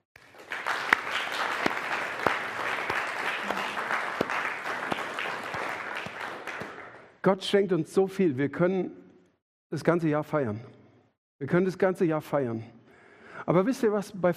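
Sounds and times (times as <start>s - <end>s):
church audience at a Pentecost service applauding: 0.2s - 7.1s
sharp individual claps: 0.2s - 7.2s
speech: 7.2s - 9.0s, 9.7s - 10.8s, 11.4s - 12.8s, 13.4s - 14.3s.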